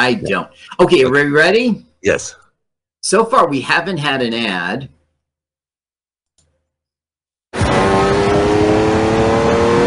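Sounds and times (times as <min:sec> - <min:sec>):
speech: 0:00.0 - 0:02.4, 0:03.0 - 0:05.0
loud race car engine revving with a high-pitched whine: 0:07.6 - 0:09.8.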